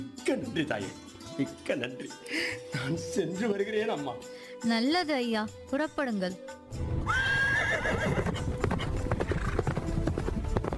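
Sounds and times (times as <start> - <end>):
speech: 0.0 - 7.2
horse hooves clip-clopping: 7.8 - 10.7.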